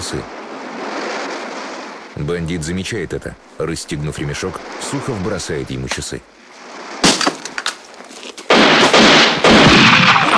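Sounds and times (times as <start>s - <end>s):
speech: 0.1s - 0.4s, 2.2s - 6.4s
pistol shots fired by a man dropping to the ground in a desert shootout: 8.5s - 10.3s.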